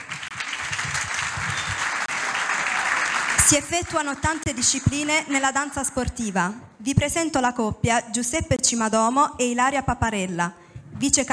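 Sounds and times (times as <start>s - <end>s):
crowd applauding: 0.0s - 5.7s
speech: 3.5s - 11.3s.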